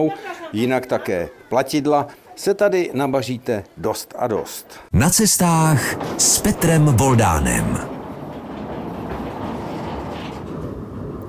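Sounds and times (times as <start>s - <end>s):
speech: 0.0s - 8.0s
small mine train rumbling along its track: 5.4s - 11.2s.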